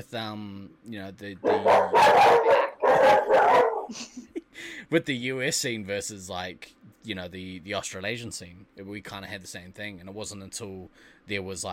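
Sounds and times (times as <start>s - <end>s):
speech: 0.0s - 11.7s
dog barking in howl-like bursts: 1.4s - 4.0s.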